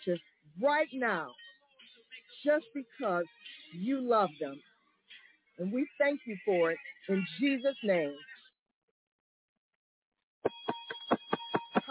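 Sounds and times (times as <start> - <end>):
speech: 0.0 - 1.4, 2.4 - 4.7, 5.6 - 8.3
bell ringing: 10.5 - 11.8.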